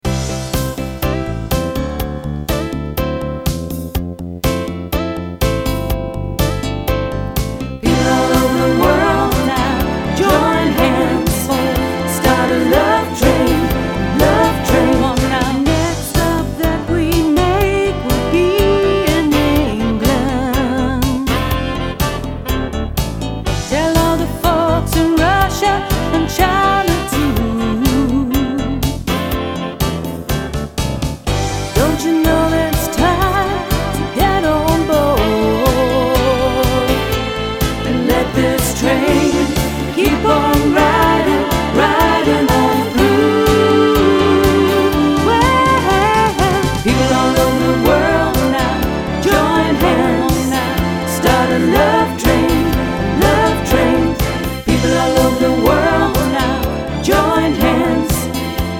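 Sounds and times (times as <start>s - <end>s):
disco band playing Motown, soul and 70s disco hits: 0.1s - 58.7s.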